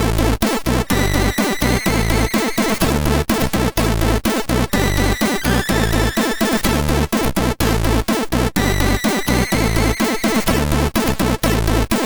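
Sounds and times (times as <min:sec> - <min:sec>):
MOS6581R3 SID sound chip music: 0:00.2 - 0:11.9.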